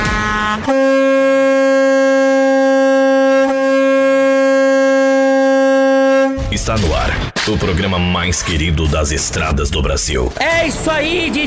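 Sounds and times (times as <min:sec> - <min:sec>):
truck air horn blaring in a long sustained blast: 0:00.0 - 0:06.6
speech: 0:00.7 - 0:01.0, 0:06.6 - 0:11.4.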